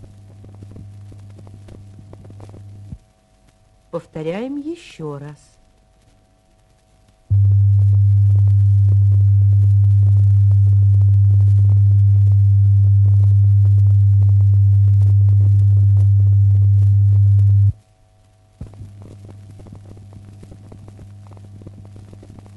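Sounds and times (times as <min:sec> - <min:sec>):
speech: 0:03.9 - 0:05.6
low-pitched pure test tone for checking loudspeaker phasing: 0:07.3 - 0:17.8.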